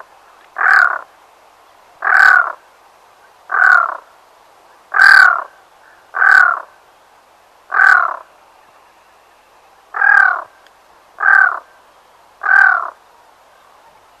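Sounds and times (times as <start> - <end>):
black-throated loon giving harsh nasal croaking calls: 0.6 - 1.1, 2.0 - 2.6, 3.5 - 4.1, 4.9 - 6.7, 7.7 - 8.3, 9.9 - 10.6, 11.2 - 11.7, 12.4 - 13.0.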